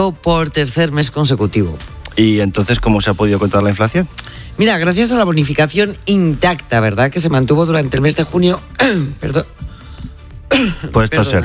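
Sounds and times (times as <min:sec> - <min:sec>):
speech: 0:00.0 - 0:09.7, 0:10.6 - 0:11.4
person coughing while speaking: 0:08.8 - 0:09.3, 0:10.5 - 0:11.0.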